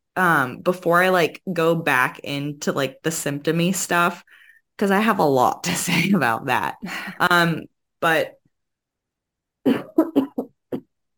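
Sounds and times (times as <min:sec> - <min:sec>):
speech: 0:00.2 - 0:08.4
person coughing: 0:09.7 - 0:10.5.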